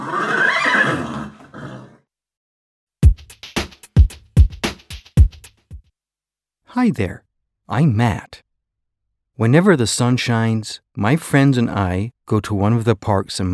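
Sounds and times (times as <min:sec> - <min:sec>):
horse neighing: 0:00.0 - 0:02.0
rhythmic hoof-like knocks: 0:03.0 - 0:05.8
speech: 0:06.8 - 0:08.4, 0:09.4 - 0:13.5.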